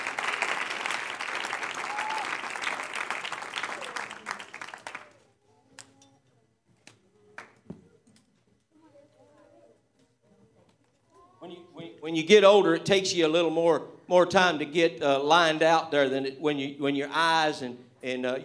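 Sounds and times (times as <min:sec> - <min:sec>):
large crowd clapping: 0:00.0 - 0:05.3
speech: 0:12.0 - 0:18.4.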